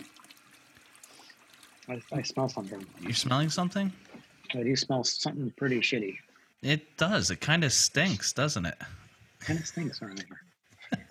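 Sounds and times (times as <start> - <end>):
toilet flushing: 0.0 - 4.0
speech: 1.9 - 10.4.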